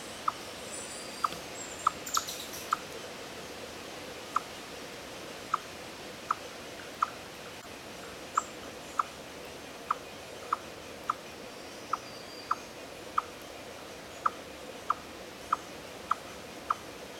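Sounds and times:
faint background hiss: 0.0s - 17.1s
Eastern chipmunk Tamias striatus chipping: 1.2s - 2.9s, 8.3s - 9.2s, 9.9s - 11.2s, 14.2s - 17.1s.

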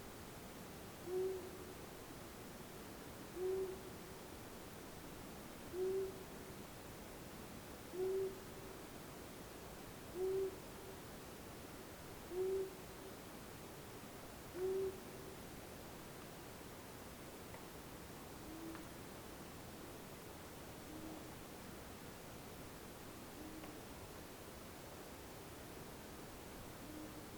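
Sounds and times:
faint background hiss: 0.0s - 27.3s
long-eared owl Asio otus giving soft low hoots: 1.0s - 1.6s, 3.4s - 3.9s, 5.7s - 6.2s, 7.9s - 8.4s, 10.1s - 10.6s, 12.3s - 12.8s, 14.6s - 15.0s, 18.4s - 18.8s, 20.9s - 21.3s, 23.4s - 23.8s, 26.8s - 27.2s.

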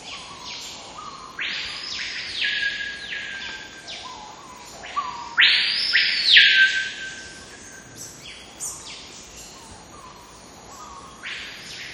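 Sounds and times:
screaming piha Lipaugus vociferans singing and whistling: 1.0s - 4.2s, 4.9s - 7.9s.

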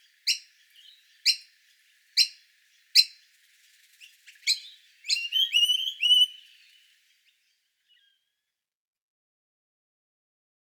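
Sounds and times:
juvenile Noisy Miner begging calls: 4.5s - 6.6s.

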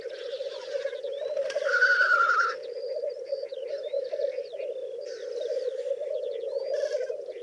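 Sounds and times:
black grouse Tetrao tetrix giving low bubbling cooing rookoo: 0.0s - 7.4s
black grouse harsh hissing burst: 0.1s - 3.0s, 5.0s - 7.4s.

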